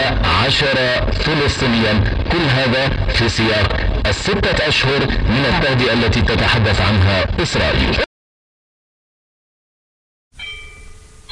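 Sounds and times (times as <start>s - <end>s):
low rumble: 0.0s - 8.0s
speech: 0.1s - 8.1s
church bell strike: 10.4s - 11.3s.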